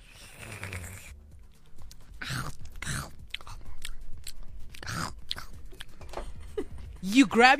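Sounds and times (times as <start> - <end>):
wet mouth noises: 0.0 - 6.0
chewing and crunching while eating breakfast: 0.1 - 6.0
speech: 7.0 - 7.5.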